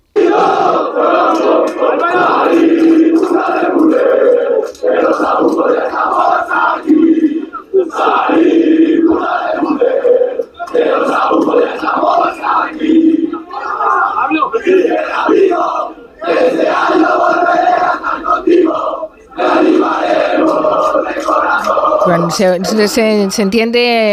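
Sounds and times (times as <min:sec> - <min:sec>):
crowd of students from a university residence hall chanting in Spanish: 0:00.0 - 0:23.3
speech: 0:22.3 - 0:24.1.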